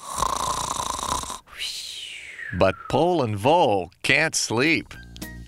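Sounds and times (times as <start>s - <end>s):
person snoring: 0.0s - 2.5s
speech: 2.5s - 5.0s.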